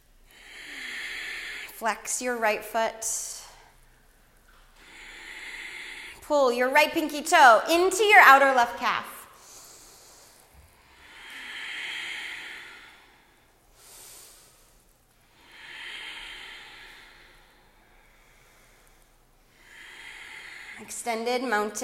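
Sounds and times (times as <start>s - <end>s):
slow ujjayi breathing with hissing inhales and exhales: 0.3s - 1.8s, 4.6s - 6.3s, 9.3s - 21.0s
speech: 1.8s - 3.4s, 6.3s - 9.1s, 21.0s - 21.8s.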